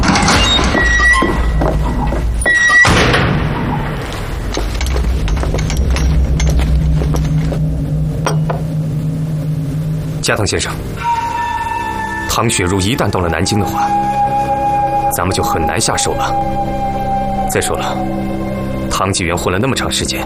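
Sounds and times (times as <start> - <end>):
door opening with a heavy thump and rattle: 0.0 - 7.5
continuous low humming background: 0.0 - 19.4
speech: 10.3 - 11.2, 12.4 - 14.5, 15.2 - 20.2.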